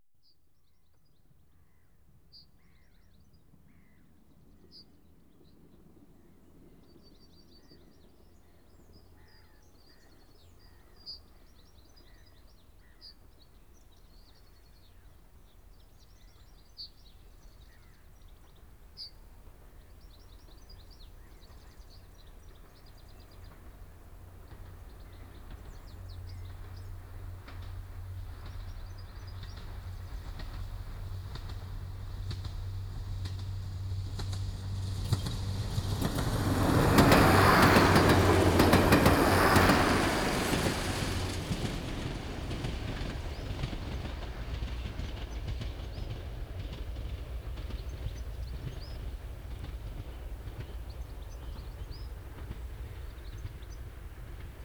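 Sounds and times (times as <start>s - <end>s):
diesel railcar passing: 17.2s - 54.6s.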